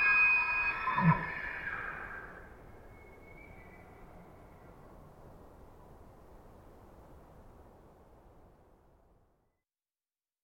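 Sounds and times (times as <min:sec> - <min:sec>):
wild elk bugling near a campsite in Washington, Pacific Northwest: 0:00.0 - 0:02.4
quiet hiss: 0:00.0 - 0:09.6.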